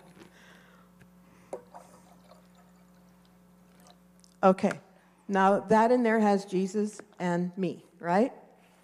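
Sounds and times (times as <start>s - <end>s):
steady low hum: 0.0s - 8.8s
water poured into a container: 1.6s - 4.0s
speech: 4.4s - 8.4s.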